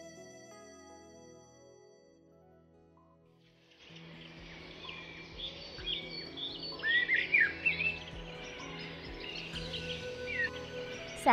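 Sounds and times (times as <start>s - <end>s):
birds chirping and trilling on a sunny early morning: 3.7s - 11.3s.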